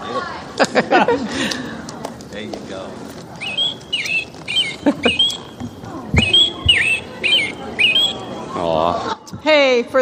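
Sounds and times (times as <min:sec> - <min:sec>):
laughter: 0:00.1 - 0:02.1, 0:03.4 - 0:09.3
American robin singing whistled phrases: 0:03.3 - 0:08.9
speech: 0:09.7 - 0:10.0.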